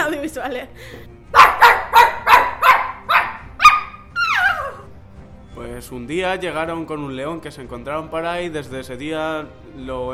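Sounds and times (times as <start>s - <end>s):
speech: 0.4s - 1.8s, 5.8s - 10.1s
dog barking: 1.3s - 4.8s.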